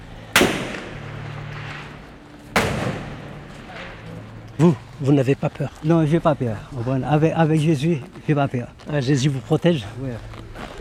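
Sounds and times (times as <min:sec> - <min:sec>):
loud sharp gunshots: 0:00.3 - 0:04.2
speech: 0:04.6 - 0:10.5.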